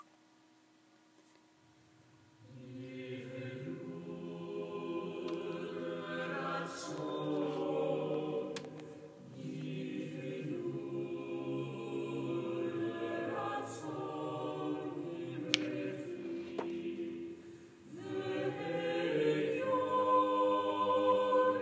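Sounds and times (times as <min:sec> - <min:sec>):
choir singing: 0:02.4 - 0:21.6.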